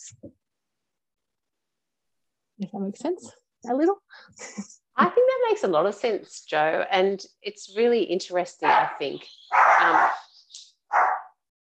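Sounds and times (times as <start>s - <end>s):
speech: 2.6s - 10.3s
dog barking: 8.7s - 10.3s, 10.9s - 11.4s.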